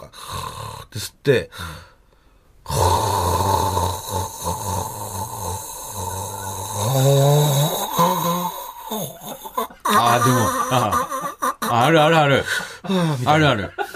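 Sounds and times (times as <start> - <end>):
speech: 0.9 - 1.9, 10.2 - 11.1, 11.7 - 13.8
long rasping snoring: 2.7 - 9.4
laughter: 9.2 - 13.9.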